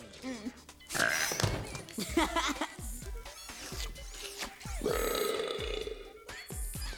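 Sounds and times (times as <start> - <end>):
laughter: 0.2 - 6.6
long guttural belch after drinking soda: 0.9 - 2.5, 3.6 - 6.2.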